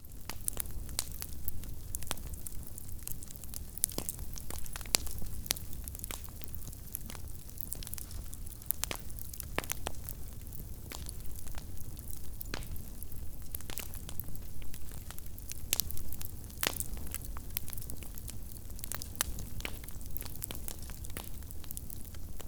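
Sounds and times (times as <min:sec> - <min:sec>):
small bonfire burning: 0:00.0 - 0:22.4.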